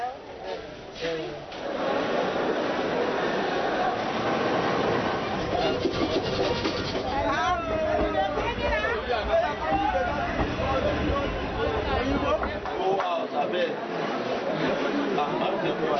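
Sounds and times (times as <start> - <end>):
voices: 0.0 - 15.9
passenger train rumbling and clattering on the rails: 2.2 - 12.8.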